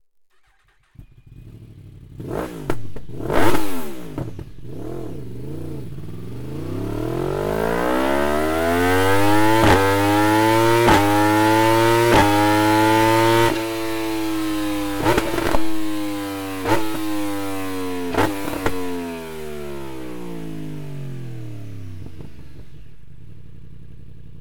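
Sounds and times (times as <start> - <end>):
motorcycle slip-on exhaust with link pipe: 0.4 - 24.3.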